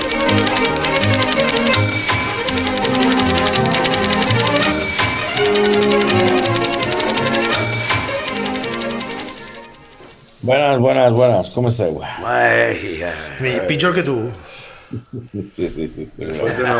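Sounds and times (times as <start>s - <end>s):
loud lively orchestral music: 0.0s - 10.4s
rapid steady typewriter keystrokes: 0.0s - 10.4s
speech: 10.5s - 16.7s
laughter: 12.0s - 16.7s.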